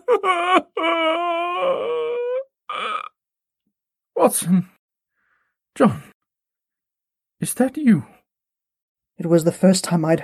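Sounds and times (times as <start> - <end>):
man sobbing piteously: 0.0 - 3.1
speech: 4.2 - 4.7, 5.8 - 6.1, 7.4 - 8.2, 9.2 - 10.2.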